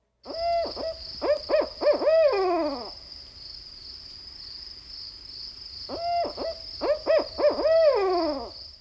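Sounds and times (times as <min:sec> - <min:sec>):
owl hooting who cooks for you all: 0:00.3 - 0:03.0, 0:05.9 - 0:08.5.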